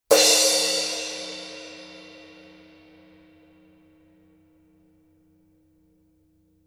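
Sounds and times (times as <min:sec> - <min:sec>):
Paiste Color Sound 900 Red crash cymbal: 0:00.1 - 0:03.4.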